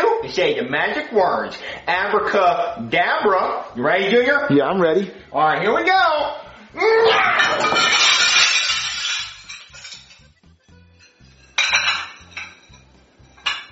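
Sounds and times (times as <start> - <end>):
speech: 0.3 - 8.1
dishes and cutlery crashing and breaking as a tablecloth is yanked off a table: 7.1 - 13.7
crockery clattering: 7.3 - 13.7.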